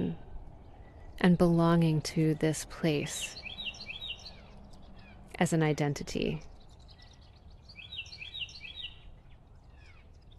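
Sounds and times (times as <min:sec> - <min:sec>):
low outdoor rumble: 0:00.0 - 0:10.3
speech: 0:01.2 - 0:03.4, 0:05.4 - 0:06.5
tufted titmice, downy woodpecker and cardinal chirping and whistling: 0:03.2 - 0:05.2, 0:06.4 - 0:10.3.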